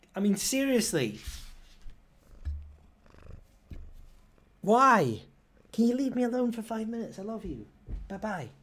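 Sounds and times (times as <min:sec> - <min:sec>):
speech: 0:00.2 - 0:01.4, 0:04.7 - 0:08.6
soft bumps and rustles: 0:01.0 - 0:04.3, 0:07.2 - 0:08.5
domestic cat purring: 0:01.3 - 0:04.7.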